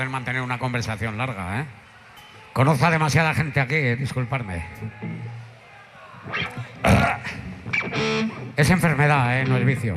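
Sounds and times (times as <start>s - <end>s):
speech: 0.0s - 1.8s, 2.6s - 5.4s, 6.2s - 9.9s
loud low guttural burp: 6.8s - 7.5s.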